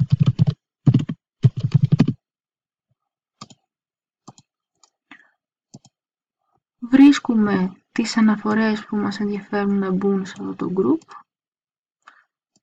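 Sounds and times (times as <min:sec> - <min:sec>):
computer keyboard typing: 0:00.0 - 0:02.2, 0:03.4 - 0:03.6, 0:04.3 - 0:04.5
speech: 0:06.9 - 0:11.2.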